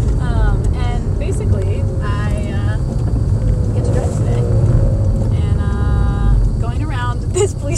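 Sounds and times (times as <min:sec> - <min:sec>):
manual-transmission car engine running while driving: 0:00.0 - 0:07.7
road rumble: 0:00.0 - 0:07.7.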